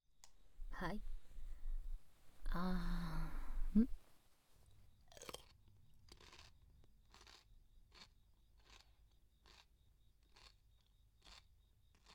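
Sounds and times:
speech: 0:00.8 - 0:01.1, 0:02.5 - 0:03.0, 0:03.7 - 0:03.9
chewing and eating food: 0:05.1 - 0:12.1.

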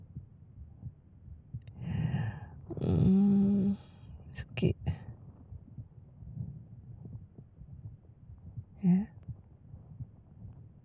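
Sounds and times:
heartbeat: 0:00.0 - 0:10.8
vocal exclamation: 0:02.7 - 0:03.9
speech: 0:02.8 - 0:03.4, 0:04.6 - 0:04.9.

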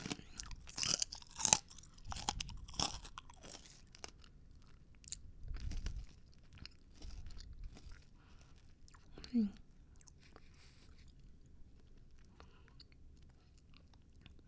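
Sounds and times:
chewing a crunchy milk-flavored snack: 0:00.0 - 0:09.4.

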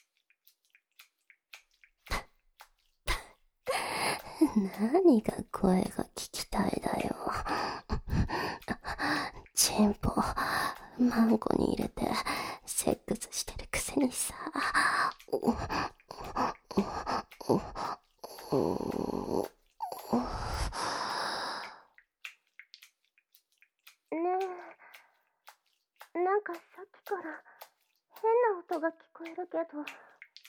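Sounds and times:
water splashing: 0:00.0 - 0:30.4
speech: 0:04.5 - 0:07.8, 0:09.6 - 0:14.4.

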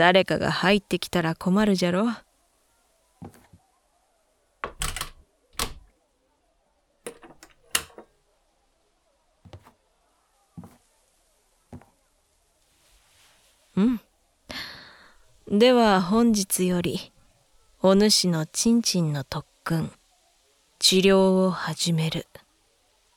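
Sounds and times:
speech: 0:00.0 - 0:02.2, 0:15.5 - 0:17.1, 0:17.8 - 0:20.0, 0:20.8 - 0:22.4
door being shut, latched and locked: 0:04.6 - 0:05.9, 0:07.1 - 0:08.1.

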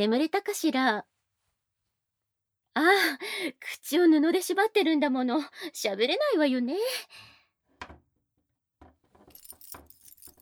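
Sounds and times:
speech: 0:00.0 - 0:01.1, 0:02.8 - 0:08.0
metal chain rattling on restraint belt: 0:09.2 - 0:10.4.

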